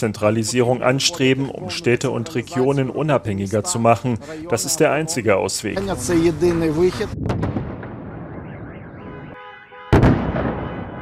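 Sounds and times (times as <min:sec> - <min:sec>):
speech: 0:00.0 - 0:07.5
city din: 0:00.0 - 0:11.0
explosions during an air attack on a city: 0:05.8 - 0:11.0.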